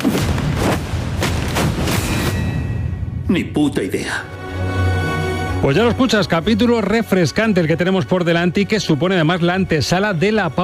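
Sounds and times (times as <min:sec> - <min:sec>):
heavy booming gunshots in a film scene: 0:00.0 - 0:02.5
speech: 0:03.3 - 0:05.0, 0:05.6 - 0:10.6.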